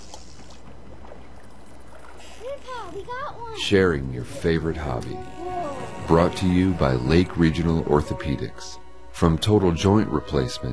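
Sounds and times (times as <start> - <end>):
small boat pushing off from a dock through water: 0.0 - 7.0
speech: 2.6 - 10.7.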